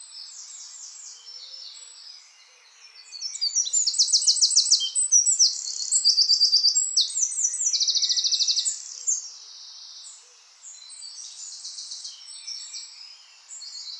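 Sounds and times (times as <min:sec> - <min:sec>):
Eurasian wren song subspecies indigenus with piercing rapid notes and dry trills: 0:00.0 - 0:13.9.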